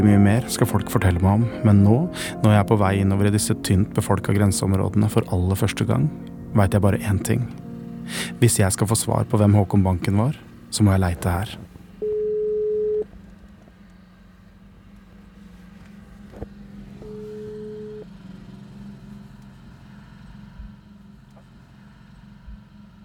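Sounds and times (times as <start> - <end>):
speech: 0.0 - 11.7
low constant rumbling hum: 0.0 - 23.0
outgoing phone call ringback tone beeps: 12.0 - 13.0, 17.0 - 18.1.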